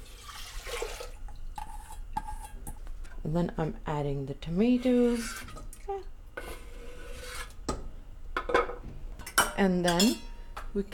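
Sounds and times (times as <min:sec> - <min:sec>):
water poured into a preheated pressure cooker with dal: 0:00.0 - 0:01.5
speech: 0:03.2 - 0:05.5, 0:09.6 - 0:10.9.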